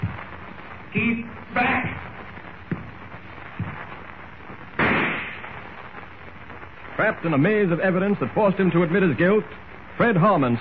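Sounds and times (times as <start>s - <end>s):
faint thuds: 0.0s - 5.5s
speech: 0.9s - 2.1s, 7.0s - 10.5s
staged rifle shot sound effect: 4.8s - 5.6s.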